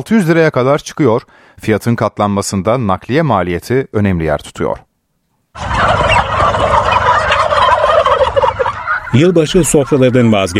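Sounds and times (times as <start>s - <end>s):
speech: 0.0s - 4.9s, 9.2s - 10.5s
flock of turkeys gobbling on a turkey farm: 5.5s - 10.5s.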